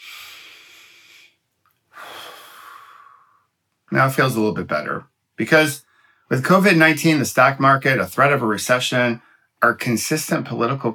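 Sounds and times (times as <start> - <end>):
slow deep breathing: 0.0 - 3.6, 5.8 - 6.3
speech: 3.9 - 10.9.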